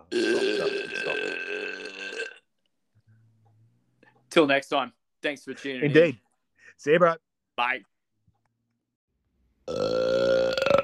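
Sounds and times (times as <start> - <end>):
long burp: 0.0 - 2.5, 9.6 - 10.8
speech: 4.4 - 7.9.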